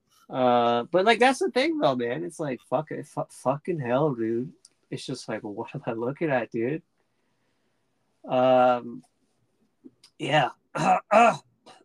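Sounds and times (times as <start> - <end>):
speech: 0.3 - 6.9, 8.2 - 9.1, 10.2 - 11.5
person clearing a congested throat: 10.8 - 11.8.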